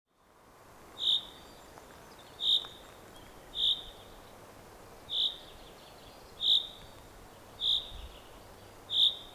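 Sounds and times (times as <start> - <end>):
common chaffinch Fringilla coelebs calls: 1.0 - 1.4, 2.3 - 2.8, 3.5 - 4.0, 5.1 - 5.5, 6.4 - 6.8, 7.6 - 9.3.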